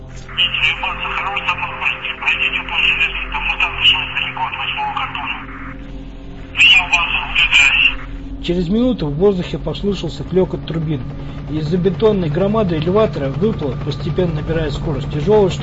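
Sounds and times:
distorted voice heard through an all-frequency radio scanner: 0:00.2 - 0:05.7, 0:06.6 - 0:08.2
speech: 0:00.3 - 0:05.6, 0:06.6 - 0:15.6.

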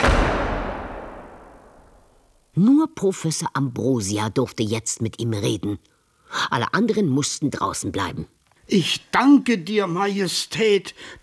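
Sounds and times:
palace door slammed shut with a loud bang: 0:00.0 - 0:01.8
speech: 0:02.6 - 0:11.2.

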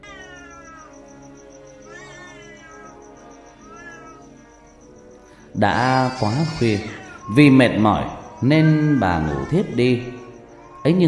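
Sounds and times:
cat meowing: 0:00.0 - 0:01.1, 0:01.8 - 0:04.6, 0:05.8 - 0:11.0
speech: 0:05.6 - 0:10.2, 0:10.8 - 0:11.0.

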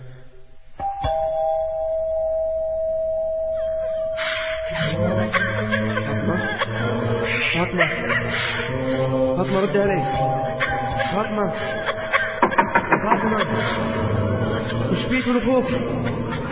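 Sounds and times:
electronic doorbell ringing: 0:00.8 - 0:04.8, 0:10.0 - 0:11.6
laughter: 0:04.7 - 0:16.4
speech: 0:07.7 - 0:11.9, 0:13.0 - 0:16.4.

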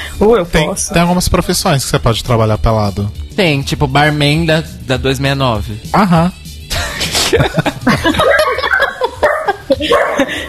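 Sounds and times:
speech: 0:00.2 - 0:06.4, 0:07.3 - 0:08.4, 0:09.7 - 0:10.4
people laughing: 0:06.7 - 0:10.4
dogs barking in excited bursts: 0:08.0 - 0:10.4.

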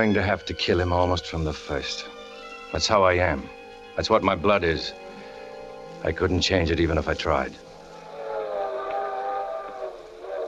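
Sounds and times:
speech: 0:00.0 - 0:05.0, 0:06.0 - 0:07.6
train whistle blowing a layered chord: 0:07.8 - 0:10.4.

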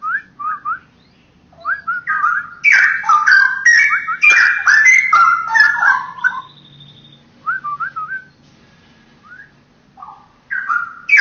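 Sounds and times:
Oriental magpie-robin song: 0:00.6 - 0:07.3, 0:10.0 - 0:11.1.

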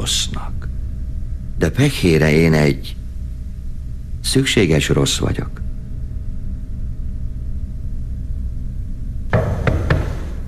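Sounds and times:
speech: 0:00.0 - 0:00.7, 0:01.6 - 0:03.0, 0:04.2 - 0:05.6
low hum and rumble: 0:00.0 - 0:10.4
sharp knocks: 0:09.3 - 0:10.4.

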